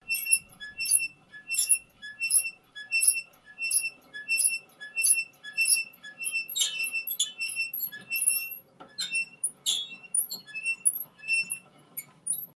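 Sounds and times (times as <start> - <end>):
wrench turning a mechanical transmission: 0.0 - 12.5.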